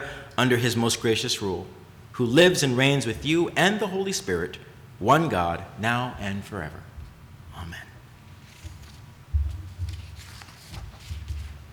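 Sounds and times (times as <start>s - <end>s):
speech: 0.4s - 6.9s, 7.6s - 7.9s
papers shuffling and rustling: 8.3s - 11.7s.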